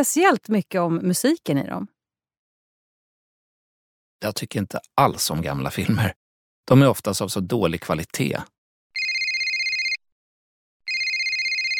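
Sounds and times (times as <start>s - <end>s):
speech: 0.0s - 1.9s, 4.2s - 8.6s
mobile phone ringtone with bright warbling rings: 9.0s - 10.0s, 10.9s - 11.7s.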